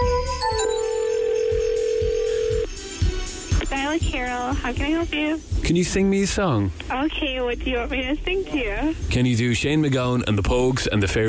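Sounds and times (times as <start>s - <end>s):
telephone ringing tone heard down the line: 0.0s - 2.7s
soft rhythmic thumps: 0.0s - 9.8s
speech: 4.0s - 11.2s.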